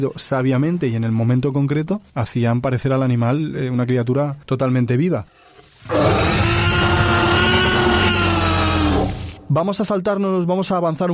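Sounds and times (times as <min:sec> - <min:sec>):
speech: 0:00.0 - 0:06.4, 0:09.5 - 0:11.1
Tyrannosaurus rex roar movie sound effect from tiger, lion, horse and seal sounds: 0:05.5 - 0:09.5.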